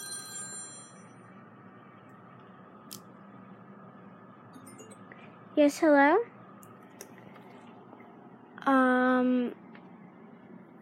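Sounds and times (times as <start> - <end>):
phone ringing with a high electronic warble: 0.0 - 1.2
speech: 5.6 - 6.3.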